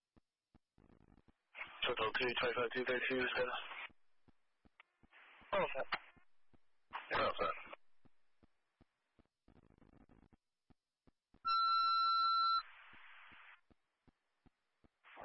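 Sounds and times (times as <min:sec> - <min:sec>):
radio static: 0:01.6 - 0:03.9, 0:05.2 - 0:06.1, 0:07.0 - 0:07.8
speech: 0:01.9 - 0:03.7
electronic fire dispatch paging tone: 0:11.5 - 0:12.7.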